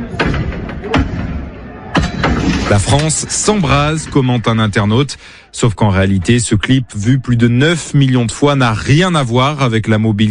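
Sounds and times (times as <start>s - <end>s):
heavy bangs as protesters smash bus shelters in a Paris street: 0.0s - 4.5s
rumbling crowd: 0.0s - 10.2s
street noise: 0.0s - 10.2s
speech: 2.7s - 10.2s.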